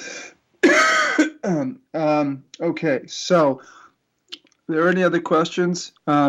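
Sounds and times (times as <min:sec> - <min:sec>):
person clearing throat with a choking cough: 0:00.6 - 0:01.8
speech: 0:01.5 - 0:03.8, 0:04.7 - 0:06.2.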